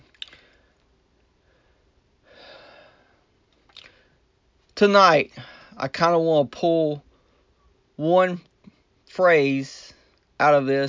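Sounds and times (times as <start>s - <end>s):
person slurping tea: 3.7s - 4.0s
speech: 4.8s - 7.1s, 8.0s - 8.5s, 9.2s - 9.8s, 10.4s - 10.8s.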